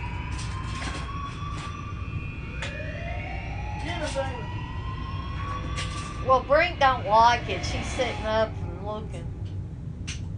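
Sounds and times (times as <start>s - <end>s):
siren wailing: 0.0s - 9.3s
steady low rumble: 0.0s - 10.3s
speech: 4.0s - 4.6s, 6.2s - 9.3s.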